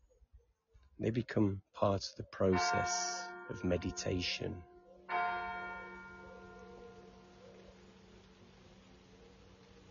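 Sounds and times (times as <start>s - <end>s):
speech: 1.0s - 4.7s
church bell ringing: 2.4s - 7.4s.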